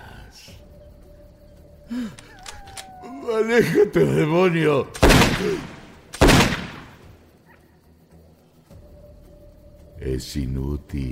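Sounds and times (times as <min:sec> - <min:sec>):
speech: 0:01.9 - 0:02.4, 0:03.2 - 0:05.8, 0:10.0 - 0:11.1
gunfire in a horror drama scene: 0:04.9 - 0:07.1.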